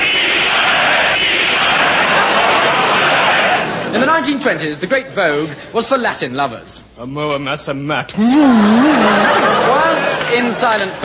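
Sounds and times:
large crowd roaring and chanting in salute: 0:00.0 - 0:04.0, 0:08.7 - 0:10.3
laughter: 0:01.6 - 0:04.4, 0:08.2 - 0:11.0
speech: 0:03.9 - 0:11.0.

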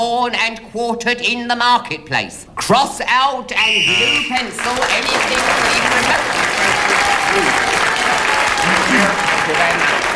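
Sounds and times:
speech: 0:00.0 - 0:07.7, 0:09.0 - 0:10.1
studio audience at a panel game applauding and cheering: 0:03.9 - 0:10.1.

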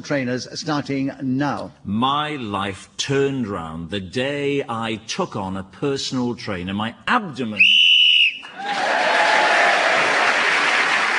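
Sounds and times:
speech: 0:00.0 - 0:07.8
short shrill referee's whistle: 0:07.6 - 0:08.6
audience applause and light cheering: 0:08.4 - 0:11.1.

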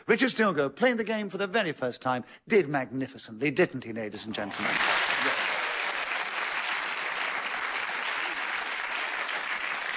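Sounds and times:
speech: 0:00.0 - 0:05.4
audience applauding: 0:04.4 - 0:09.9.

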